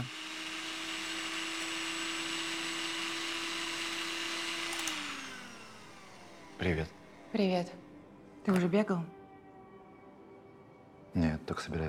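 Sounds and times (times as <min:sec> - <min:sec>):
blender motor whining in a kitchen: 0:00.0 - 0:07.1
speech: 0:06.6 - 0:07.8, 0:08.4 - 0:09.2, 0:11.1 - 0:11.8.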